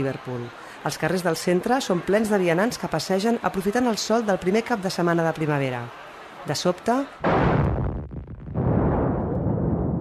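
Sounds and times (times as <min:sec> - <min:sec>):
speech: 0:00.0 - 0:07.5
loud bomb blasts: 0:07.2 - 0:09.9.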